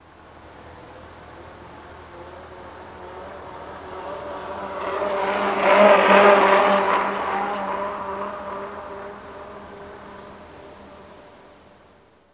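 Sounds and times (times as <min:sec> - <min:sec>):
bicycle tires passing at medium speed: 0:02.1 - 0:11.5.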